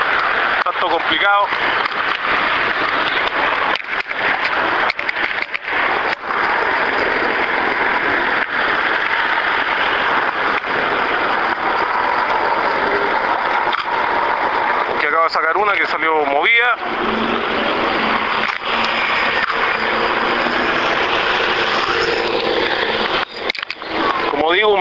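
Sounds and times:
street traffic passing on a city street during a demonstration: 0.0 - 24.7
speech: 0.8 - 2.9.

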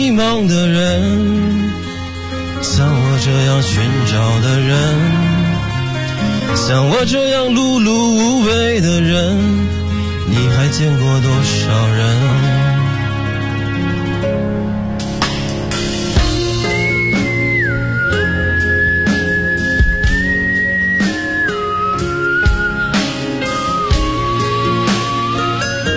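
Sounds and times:
speech: 0.0 - 1.8, 2.6 - 5.4, 6.2 - 12.6
instrumental backing of a pop song: 0.0 - 25.9
person whistling a tune: 16.4 - 25.9.

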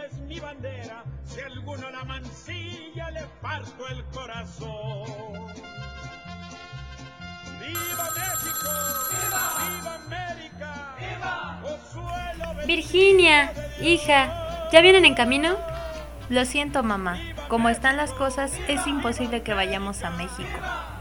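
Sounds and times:
steady music: 0.0 - 20.9
speech: 0.4 - 5.2, 12.6 - 15.7, 16.3 - 20.9
telephone ringing in a family home: 7.6 - 11.1, 12.1 - 20.9.

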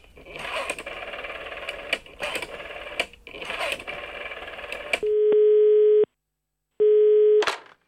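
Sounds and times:
telephone ringback tone: 5.0 - 6.1, 6.8 - 7.4.

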